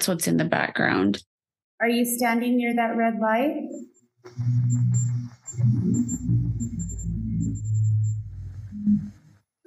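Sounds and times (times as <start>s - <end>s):
speech: 0.0s - 8.1s
REM pod electronic alarm beeping over a low wavering tone: 4.3s - 9.2s.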